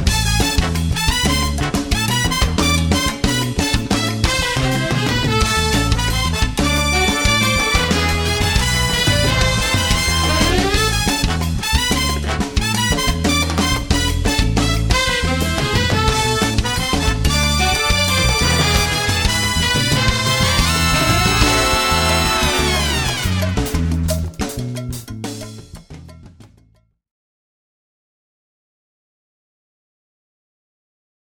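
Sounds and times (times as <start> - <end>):
salsa music: 0.2 - 25.1.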